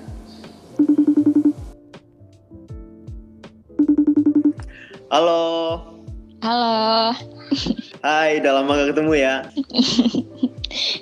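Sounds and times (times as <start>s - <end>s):
electronic telephone tones from dialing and ringing: 0.8s - 1.6s, 3.8s - 4.6s
speech: 5.1s - 10.9s
laughter: 7.5s - 8.0s, 9.6s - 10.8s.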